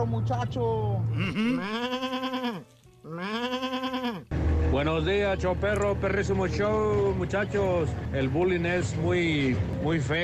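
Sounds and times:
speech: 0.0 - 3.6, 4.7 - 10.2
sheep bleating: 1.1 - 4.3.

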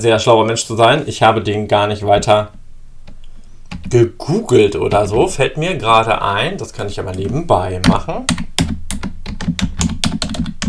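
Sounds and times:
speech: 0.0 - 2.6, 3.9 - 8.8
typing on a computer keyboard: 7.8 - 10.6.

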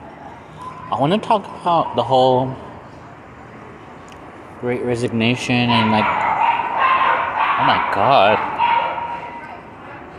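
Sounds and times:
speech: 0.9 - 2.7, 4.6 - 6.2, 7.6 - 8.4
dog barking harshly: 5.7 - 9.5.

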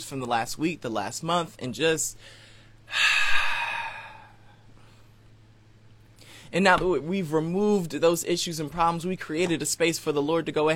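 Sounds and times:
speech: 0.0 - 3.3, 6.5 - 10.7
long exhale during a guided breathing exercise: 2.2 - 5.0.

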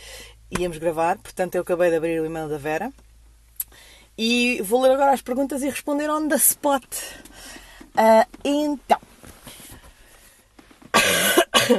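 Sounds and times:
speech: 0.5 - 3.0, 4.2 - 7.2, 8.0 - 9.1
faint breaths: 3.7 - 4.2, 6.9 - 8.0, 9.3 - 10.6
person coughing: 10.9 - 11.7.

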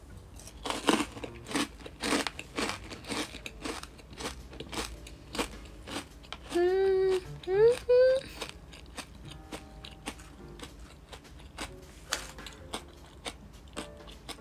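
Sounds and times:
crunchy wedge-shaped potato chip snack being bitten and chewed: 0.3 - 14.3
person humming: 6.4 - 8.6.

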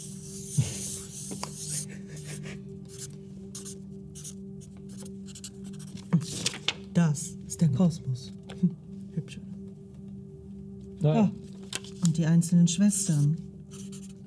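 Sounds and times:
permanent marker drawing on paper: 0.0 - 6.0, 13.1 - 14.2
speech: 7.0 - 8.8, 12.2 - 13.5.

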